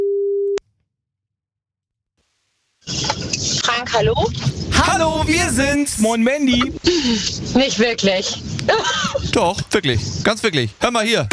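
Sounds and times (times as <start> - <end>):
telephone line tone as a call is placed: 0.0 - 0.6
speech: 3.8 - 11.3.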